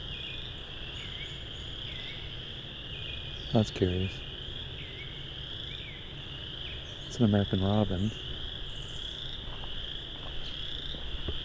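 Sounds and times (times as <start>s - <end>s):
tree frogs calling in a high-pitched trill: 0.0s - 11.4s
speech: 3.5s - 4.3s, 7.2s - 8.3s.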